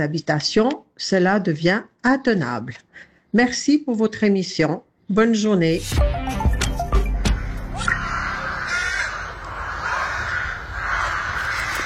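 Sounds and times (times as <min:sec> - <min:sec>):
speech: 0:00.0 - 0:06.4
several crows cawing harshly: 0:07.1 - 0:11.8.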